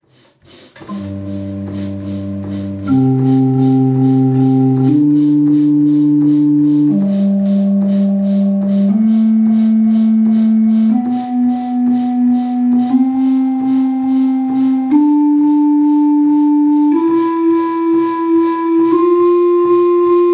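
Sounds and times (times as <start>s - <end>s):
organ playing a scale: 0.1s - 20.3s.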